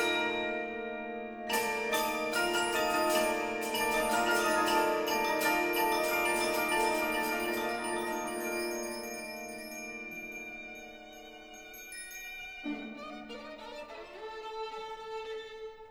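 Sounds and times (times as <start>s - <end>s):
bright metallic chimes of an orchestral pseudo-gamelan: 0.0s - 14.1s
sustained orchestral tones: 0.0s - 15.8s
singing solo violin line: 10.2s - 15.8s.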